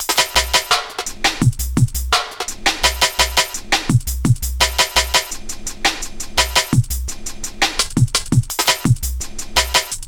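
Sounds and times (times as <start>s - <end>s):
sliced drum beat: 0.0s - 10.0s.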